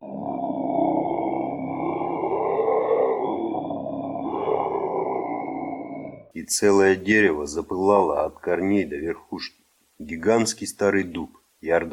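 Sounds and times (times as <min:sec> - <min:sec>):
sinister deep growling roar of demons: 0:00.0 - 0:06.3
steady tonal howl of demons: 0:00.0 - 0:06.3
speech: 0:06.4 - 0:11.9.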